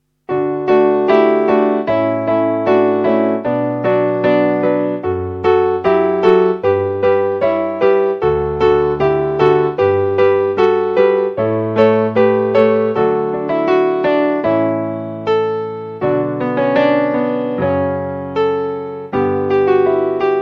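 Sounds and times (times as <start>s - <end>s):
piano canon: 0.0s - 20.4s.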